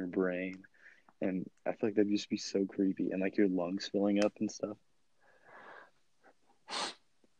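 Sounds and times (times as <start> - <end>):
speech: 0.0 - 4.9
breathy inhales: 0.7 - 1.1, 5.2 - 5.9
nasal sniff: 6.7 - 7.0.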